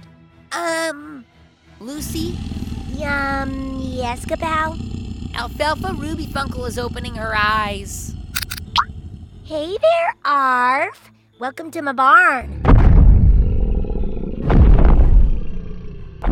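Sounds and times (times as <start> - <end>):
speech: 0.5 - 8.1, 9.5 - 12.6
large creature growling and roaring: 2.0 - 9.6, 12.5 - 16.2.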